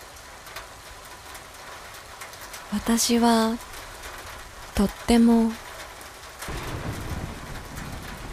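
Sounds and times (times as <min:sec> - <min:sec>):
steady rain: 0:00.0 - 0:08.3
speech: 0:02.7 - 0:03.7, 0:04.8 - 0:05.6.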